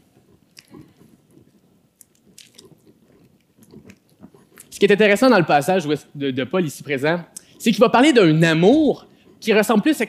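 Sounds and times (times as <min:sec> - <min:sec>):
soft gulps of water: 0:00.0 - 0:04.8
quiet wet mouth clicks while sipping water: 0:00.2 - 0:04.8, 0:07.3 - 0:07.6
speech: 0:04.8 - 0:10.0.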